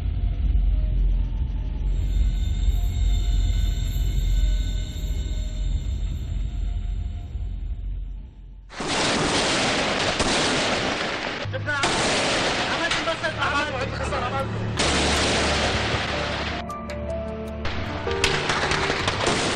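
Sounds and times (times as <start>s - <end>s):
low steady rumble: 0.0s - 16.6s
sporadic gunfire: 8.7s - 13.7s, 14.8s - 16.6s, 17.7s - 19.5s.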